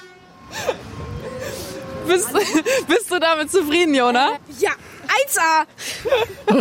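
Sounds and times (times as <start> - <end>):
truck horn blast: 0.0 - 2.6
speech: 2.1 - 6.5.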